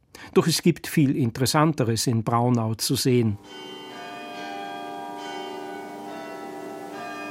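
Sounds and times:
speech: 0.4s - 3.8s
carillon chiming in a town gate tower in Braunau Austria: 3.4s - 7.2s.

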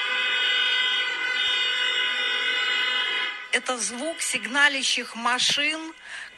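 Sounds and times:
car horns honking on a street in protest: 0.0s - 4.8s.

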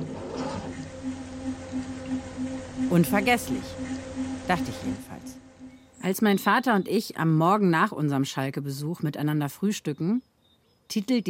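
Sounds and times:
low eerie droning tone for something disappearing: 0.0s - 6.8s
speech: 2.9s - 3.8s, 4.5s - 5.1s, 6.0s - 10.3s, 10.9s - 11.2s.

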